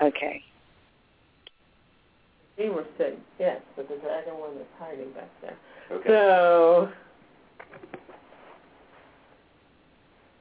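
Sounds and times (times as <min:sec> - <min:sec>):
speech: 0:00.0 - 0:00.5, 0:02.6 - 0:07.1
tarot deck being shuffled by a woman during a reading: 0:07.6 - 0:08.6.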